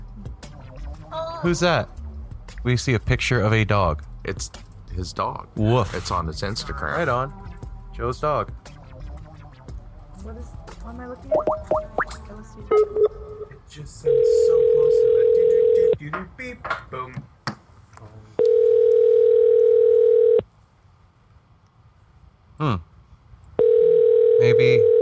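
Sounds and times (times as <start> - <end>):
speech: 1.1 - 2.0, 2.6 - 7.4, 8.0 - 8.7, 10.2 - 17.4, 22.6 - 22.9
long mid-pitched telephone line tones: 12.7 - 16.0, 18.4 - 20.4, 23.6 - 25.0.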